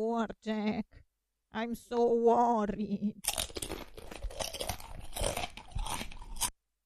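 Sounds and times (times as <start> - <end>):
speech: 0.0 - 3.4
crunchy chewing: 3.2 - 6.6.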